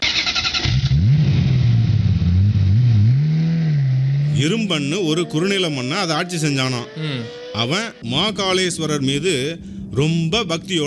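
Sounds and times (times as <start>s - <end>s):
car engine starting and revving: 0.0s - 10.8s
speech: 4.4s - 10.8s.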